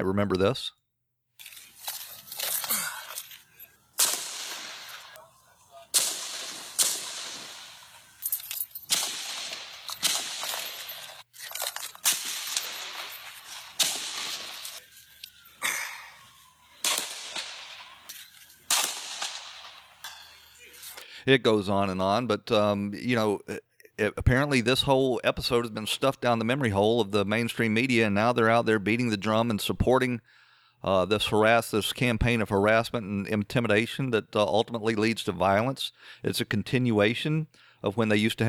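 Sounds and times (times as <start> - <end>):
speech: 0.0 - 0.8, 21.3 - 38.4
assault rifle gunfire at baseball practice: 4.0 - 5.2, 5.9 - 11.2, 12.0 - 14.8, 16.8 - 20.2.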